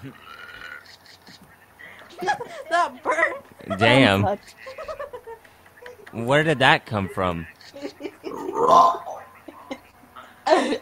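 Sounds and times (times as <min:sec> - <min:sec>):
speech: 0:00.0 - 0:00.4, 0:02.2 - 0:05.0, 0:06.1 - 0:07.8, 0:08.6 - 0:09.1, 0:10.5 - 0:10.7
loud drawn-out burp: 0:00.0 - 0:00.8, 0:08.3 - 0:09.2
laughter: 0:01.8 - 0:10.7.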